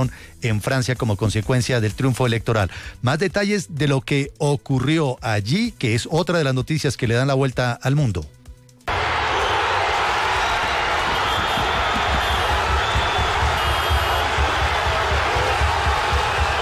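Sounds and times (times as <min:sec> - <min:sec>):
speech: 0:00.0 - 0:08.4
crowd celebrating a football championship win in Paris streets: 0:08.9 - 0:16.5.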